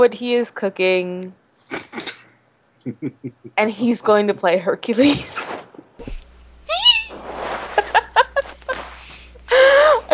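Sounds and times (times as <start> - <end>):
speech: 0.0 - 2.0, 2.8 - 5.6
laughter: 2.9 - 3.5, 6.7 - 10.1
tiny excited high-pitched squeaks and breathy squeals: 6.7 - 7.6.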